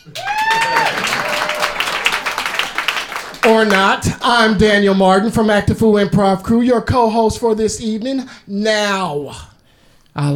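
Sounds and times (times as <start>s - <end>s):
scattered cheers: 0.0s - 2.7s
crowd applause: 0.0s - 4.2s
speech: 3.4s - 9.5s, 10.2s - 10.3s.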